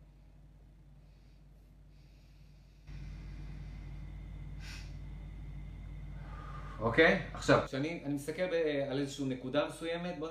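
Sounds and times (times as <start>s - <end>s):
slow deep breathing: 0.0s - 7.4s
speech: 6.8s - 10.2s.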